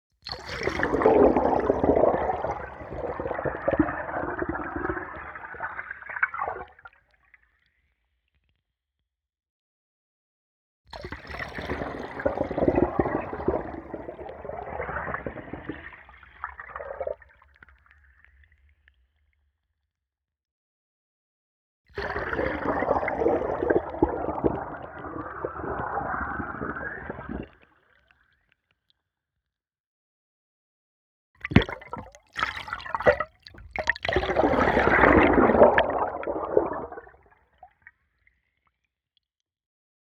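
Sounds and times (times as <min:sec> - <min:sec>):
long hard underwater fill up: 0:00.2 - 0:07.0, 0:10.9 - 0:17.8, 0:22.0 - 0:28.4, 0:31.4 - 0:38.2.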